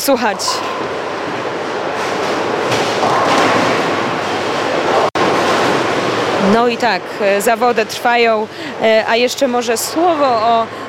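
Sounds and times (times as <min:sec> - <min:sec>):
speech: 0:00.0 - 0:01.0, 0:06.4 - 0:10.8
continuous bowling alley noise: 0:00.0 - 0:07.9
bowling ball rumbling down the lane at a bowling competition: 0:00.3 - 0:06.4.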